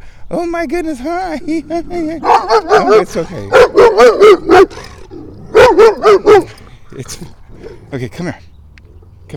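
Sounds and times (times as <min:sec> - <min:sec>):
speech: 0:00.3 - 0:04.9, 0:05.8 - 0:08.5
dog barking: 0:02.2 - 0:04.9, 0:05.5 - 0:06.6.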